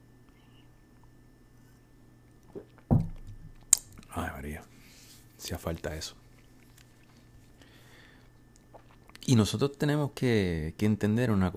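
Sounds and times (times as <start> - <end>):
person sipping beer: 2.4 - 2.9, 6.2 - 9.3
speech: 5.4 - 6.2, 9.3 - 11.5
short satisfied vocal breath: 7.6 - 8.3.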